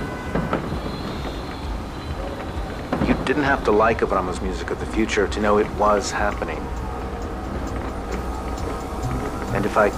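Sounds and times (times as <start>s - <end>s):
train wheels rumbling through a tunnel: 0.0s - 9.9s
speech: 3.3s - 6.8s, 9.7s - 9.9s.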